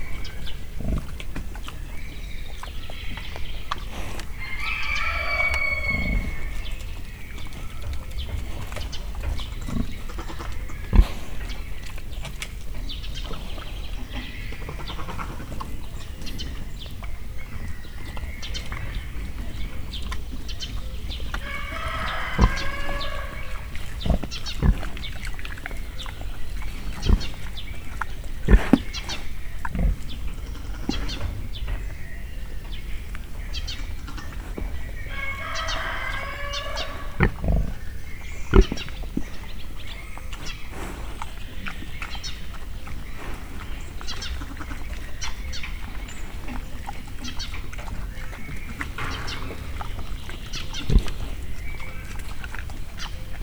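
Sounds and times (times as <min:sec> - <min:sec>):
Mangalica pig grunting in a zoo: 0:00.0 - 0:53.4
rooster crowing in a zoo: 0:04.3 - 0:06.7, 0:21.4 - 0:23.8, 0:35.1 - 0:37.3.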